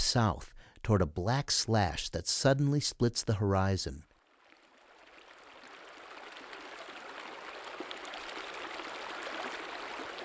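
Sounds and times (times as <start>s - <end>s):
speech: 0.0s - 4.1s
cold clear river flowing through a gorge: 4.4s - 10.2s.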